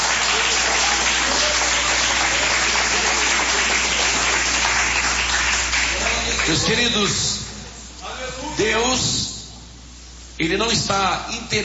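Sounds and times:
large group applauding during a religious service: 0:00.0 - 0:07.0
speech: 0:06.5 - 0:07.4, 0:08.4 - 0:09.2, 0:10.4 - 0:11.6.

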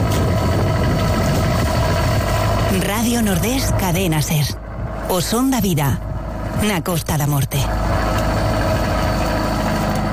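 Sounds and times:
boat engine leaving a fishing port at night: 0:00.0 - 0:10.1
speech: 0:02.8 - 0:08.0.

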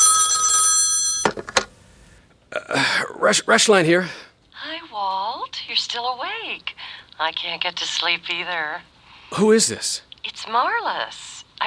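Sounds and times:
telephone ringing with a bright electronic trill: 0:00.0 - 0:01.5
telephone handset being picked up: 0:01.1 - 0:01.7
speech: 0:03.2 - 0:04.2, 0:05.8 - 0:11.6.

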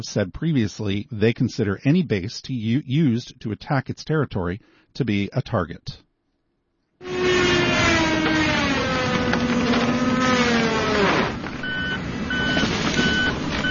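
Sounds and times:
speech: 0:00.0 - 0:06.0
chainsaw engine drone from tree cutting at a golf course: 0:07.0 - 0:12.2
low rumbling of trucks: 0:07.0 - 0:13.7
steady electronic truck beeps: 0:11.6 - 0:13.7.

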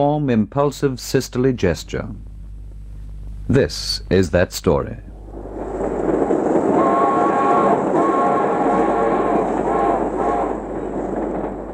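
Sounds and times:
speech: 0:00.0 - 0:02.3, 0:03.5 - 0:05.1
third-class passenger train wheels clattering on rails: 0:05.6 - 0:11.7.

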